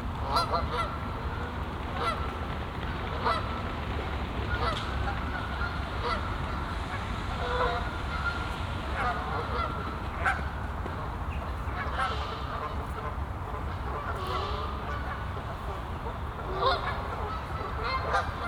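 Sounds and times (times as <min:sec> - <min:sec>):
geese honking on a castle pond in a botanical garden: 0:00.2 - 0:02.3, 0:03.1 - 0:03.6, 0:04.5 - 0:18.4.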